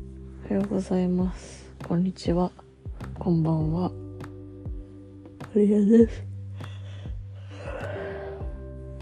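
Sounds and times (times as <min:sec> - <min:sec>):
speech: 0:00.7 - 0:04.0, 0:05.5 - 0:06.3
person yawning: 0:07.5 - 0:08.5.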